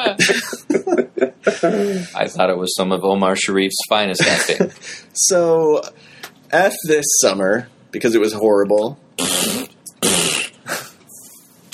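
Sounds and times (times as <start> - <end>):
speech: 1.6 - 9.4
person blowing wet raspy fart noises with the mouth: 9.2 - 11.0.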